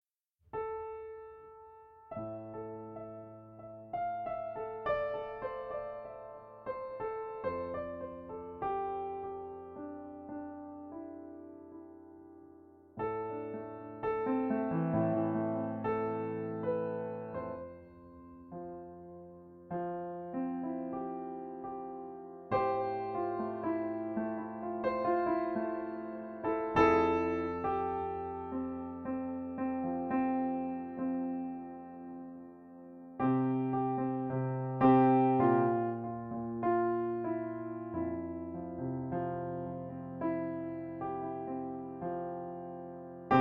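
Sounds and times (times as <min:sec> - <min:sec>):
Steinway D piano being tuned: 0:00.6 - 0:43.3.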